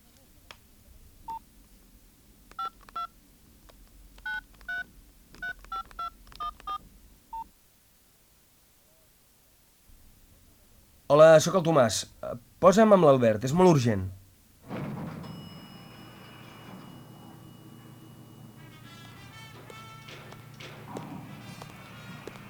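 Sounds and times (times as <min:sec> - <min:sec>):
mobile phone keypad dialling tones: 0:02.5 - 0:03.1, 0:04.2 - 0:07.5, 0:15.2 - 0:21.0
speech: 0:11.1 - 0:14.2.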